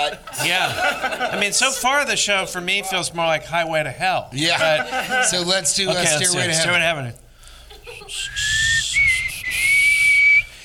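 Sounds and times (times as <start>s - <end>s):
laughter: 0.0s - 2.0s, 4.4s - 6.6s, 7.7s - 8.4s
speech: 0.0s - 7.2s, 7.9s - 8.6s
breathy attempted whistling, mostly blowing air: 7.4s - 10.6s.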